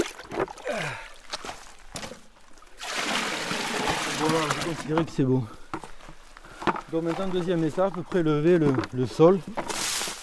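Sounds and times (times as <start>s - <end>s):
river water splashing and sloshing as it is scooped: 0.0s - 8.0s, 8.6s - 10.2s
river water pouring into a large container for flotation: 2.7s - 4.9s
speech: 4.3s - 5.6s, 6.9s - 9.6s.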